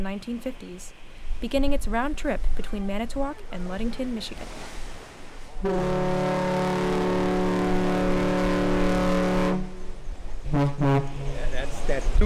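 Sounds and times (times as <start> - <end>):
speech: 0.0 - 4.8, 5.6 - 7.0, 10.5 - 11.0
car ferry horn short toots: 5.6 - 9.9
car ferry horn blowing a salute on the lake: 5.6 - 11.5.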